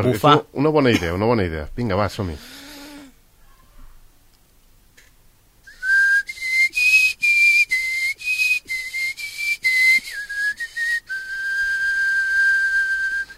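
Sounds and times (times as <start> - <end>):
speech: 0.0 - 2.6
person whistling a film theme melody: 5.7 - 13.3.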